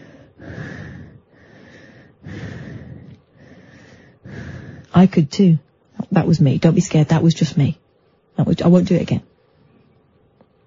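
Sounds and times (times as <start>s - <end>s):
heavy breathing: 0.0s - 5.1s
speech: 5.0s - 7.8s, 8.4s - 9.3s.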